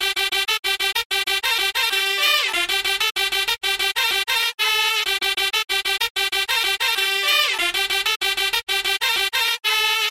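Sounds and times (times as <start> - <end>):
baraat shehnai loop: 0.0 - 10.0.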